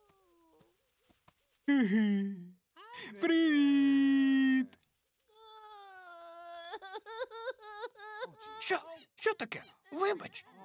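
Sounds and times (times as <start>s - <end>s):
speech: 1.7s - 2.4s, 3.1s - 3.8s, 8.7s - 10.6s
small child crying: 5.3s - 8.6s.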